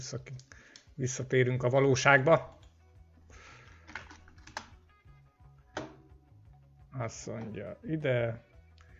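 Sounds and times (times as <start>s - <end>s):
speech: 0.0s - 2.6s, 7.0s - 8.5s
computer keyboard typing: 3.9s - 4.8s.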